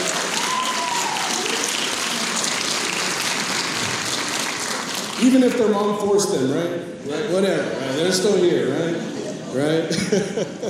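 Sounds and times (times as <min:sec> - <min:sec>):
crowd applauding: 0:00.0 - 0:05.7
speech: 0:05.2 - 0:10.6
laughter: 0:07.6 - 0:10.6.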